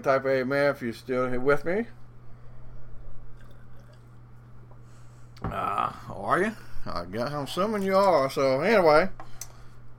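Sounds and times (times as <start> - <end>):
speech: 0.0 - 2.0, 5.5 - 9.3
low steady hum: 0.0 - 9.9
person sipping and swallowing a drink: 3.0 - 5.4.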